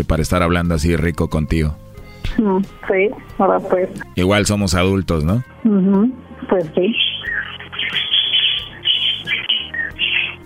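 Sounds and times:
speech: 0:00.0 - 0:07.5
many small birds chirping and twittering: 0:06.8 - 0:10.4.

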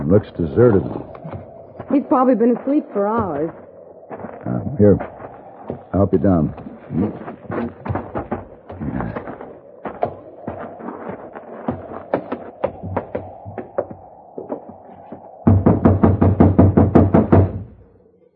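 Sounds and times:
speech: 0:00.1 - 0:01.1, 0:01.9 - 0:03.6, 0:04.5 - 0:05.1, 0:06.0 - 0:07.7
knuckles knocking on a locked door: 0:15.5 - 0:17.7.

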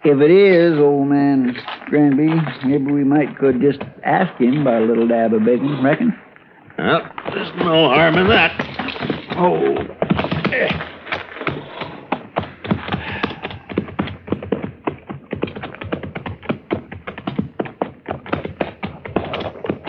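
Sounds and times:
speech: 0:00.0 - 0:08.7, 0:09.4 - 0:10.9
horse hooves clip-clopping: 0:00.1 - 0:06.2, 0:06.9 - 0:19.8.

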